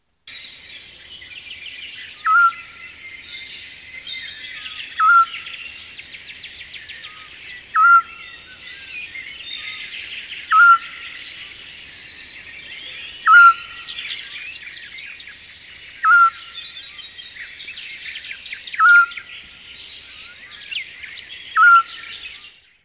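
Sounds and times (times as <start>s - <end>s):
scops owl calling: 2.0s - 3.0s, 4.5s - 5.7s, 7.0s - 8.6s, 10.5s - 11.5s, 12.8s - 14.4s, 15.9s - 16.9s, 18.8s - 19.4s, 21.5s - 22.2s.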